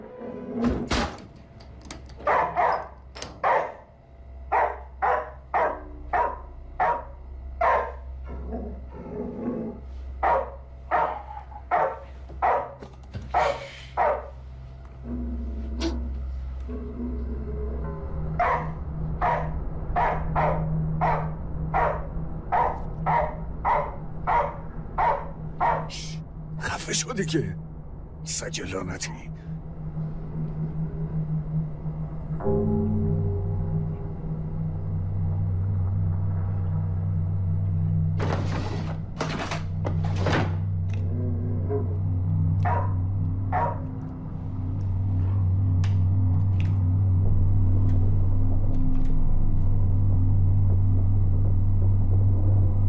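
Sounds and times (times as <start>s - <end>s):
low hum: 0.7s - 52.8s
dog barking in quick bursts: 2.2s - 3.9s, 4.5s - 8.0s, 10.2s - 14.4s, 18.4s - 26.0s, 42.6s - 43.9s
speech: 27.2s - 27.6s, 28.5s - 29.2s.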